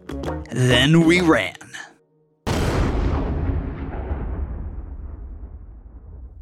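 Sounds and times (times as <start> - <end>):
speech: 0.4 - 1.6
explosive boom with deep rumble: 2.5 - 6.4.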